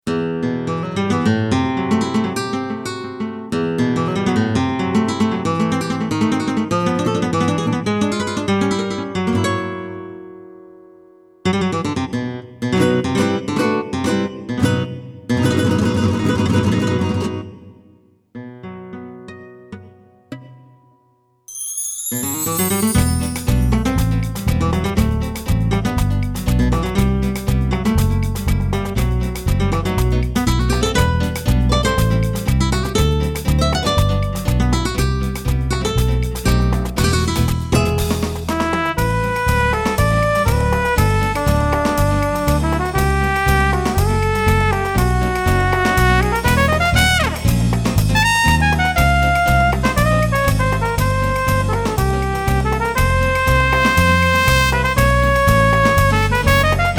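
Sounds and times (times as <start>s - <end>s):
flamenco guitar: 0.0s - 21.4s, 22.4s - 56.9s
trumpet: 22.2s - 23.6s, 38.5s - 56.9s.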